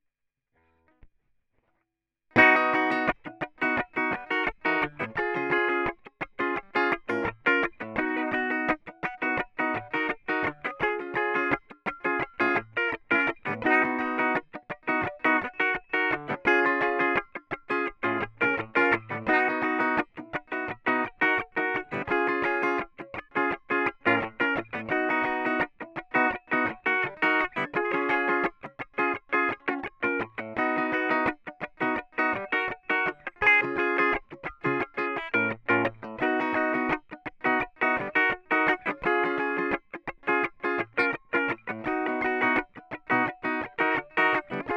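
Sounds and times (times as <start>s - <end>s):
strumming: 2.4s - 44.7s.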